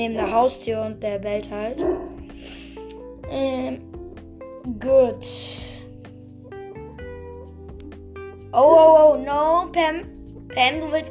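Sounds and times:
speech: 0.0 - 2.6, 3.3 - 4.0, 4.6 - 5.6, 8.5 - 11.0
dog giving short yelping barks: 0.2 - 0.4, 1.8 - 2.2.

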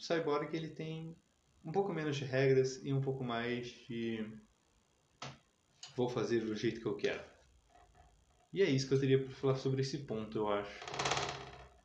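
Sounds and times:
speech: 0.0 - 4.5, 5.2 - 5.4, 6.0 - 7.3, 8.5 - 11.2
cat clambering onto a desk causing rattling clatter: 10.8 - 11.7.

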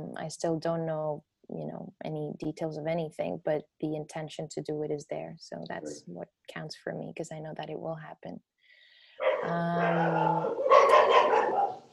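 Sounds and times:
speech: 0.0 - 8.5, 9.4 - 11.5
dogs barking: 9.2 - 11.9.

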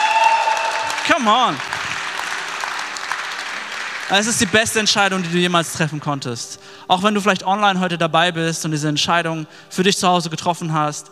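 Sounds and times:
audience applause: 0.0 - 6.0
speech: 1.2 - 1.7, 4.1 - 11.0.

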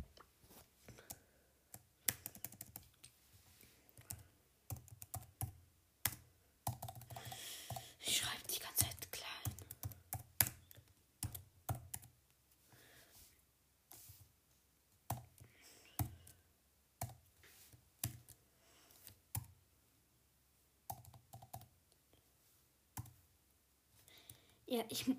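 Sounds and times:
typing on a computer keyboard: 1.0 - 3.0, 3.9 - 12.2, 15.1 - 16.4, 17.0 - 17.2, 18.0 - 18.4, 19.0 - 19.6, 20.9 - 21.7, 23.0 - 23.2
speech: 24.7 - 25.1.

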